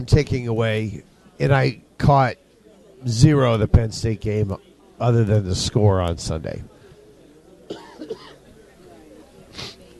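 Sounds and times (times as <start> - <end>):
speech: 0.0 - 2.4, 3.0 - 6.7
sharp cough with throaty rasps: 7.7 - 8.4.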